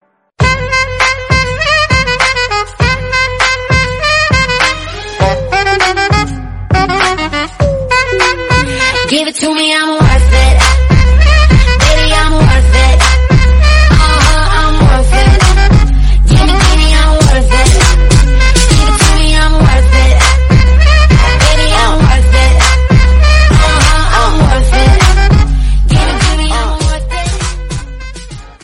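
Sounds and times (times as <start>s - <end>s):
loud background music: 0.4s - 9.2s, 10.0s - 28.6s
ringtone tones: 7.6s - 9.0s.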